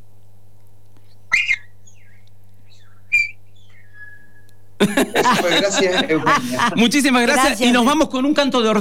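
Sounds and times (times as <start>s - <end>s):
steady low electrical hum: 0.0s - 8.7s
person whistling: 2.9s - 4.5s
laughter: 4.8s - 7.4s
speech: 4.8s - 8.7s.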